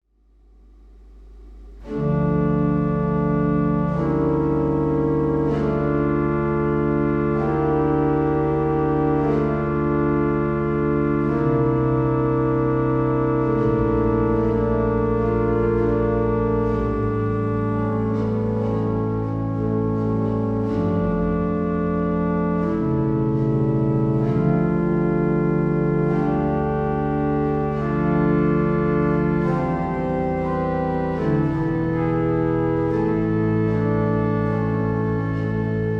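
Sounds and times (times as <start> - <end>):
pipe organ flautado stop: 0.9 - 35.9.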